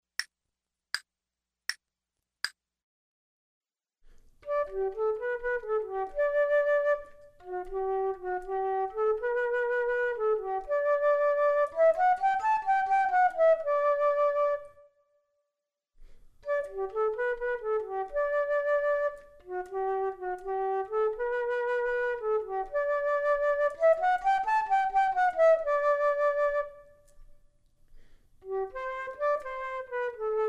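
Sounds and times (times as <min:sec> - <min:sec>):
flute duet: 0:04.4 - 0:15.0, 0:16.4 - 0:27.4, 0:28.4 - 0:30.4.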